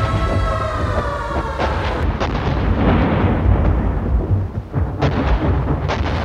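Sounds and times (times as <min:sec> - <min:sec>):
wartime air raid siren wailing: 0:00.0 - 0:02.2
falling bombs screaming and whistling: 0:00.0 - 0:04.4
heavy booming bomb blasts: 0:00.0 - 0:06.2
anti-aircraft batteries firing: 0:02.0 - 0:06.2.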